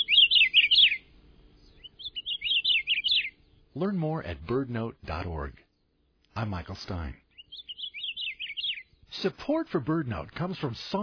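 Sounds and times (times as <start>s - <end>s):
Akiapolaau Hawaiian honeycreeper calling: 0.0s - 3.8s, 7.1s - 9.2s
speech: 3.8s - 5.6s, 6.4s - 7.2s, 9.2s - 11.0s.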